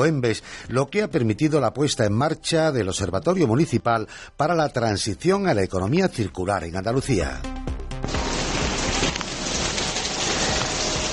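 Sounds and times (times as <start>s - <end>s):
speech: 0.0s - 7.5s
steady dense rain falling: 8.0s - 11.1s.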